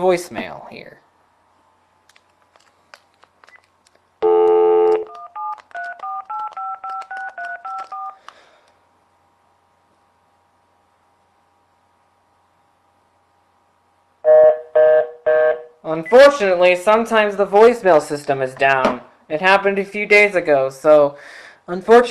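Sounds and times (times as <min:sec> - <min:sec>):
speech: 0:00.0 - 0:01.1, 0:15.9 - 0:22.0
faint hum: 0:00.0 - 0:22.0
telephone keypad tones from dialing a number: 0:04.2 - 0:08.2.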